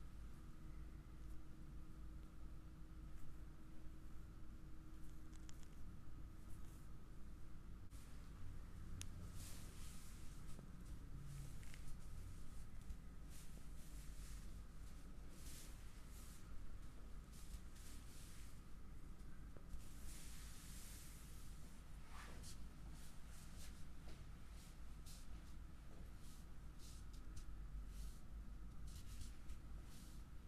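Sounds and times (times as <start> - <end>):
thin steady hum: 0.0 - 30.4
neck and back massage rubbing and brushing strokes: 9.2 - 18.8, 19.7 - 30.4.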